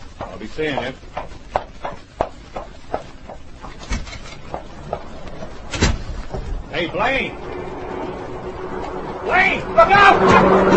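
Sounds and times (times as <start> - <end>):
footsteps walking off: 0.0 - 9.2
speech: 0.2 - 1.4, 6.8 - 7.6, 9.3 - 10.7
door opening and thudding shut: 3.8 - 4.5, 5.6 - 6.6.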